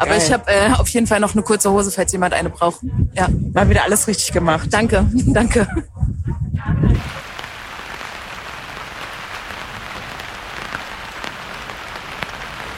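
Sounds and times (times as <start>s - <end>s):
speech: 0.0s - 7.2s
steady rain spattering on a surface: 7.0s - 12.7s.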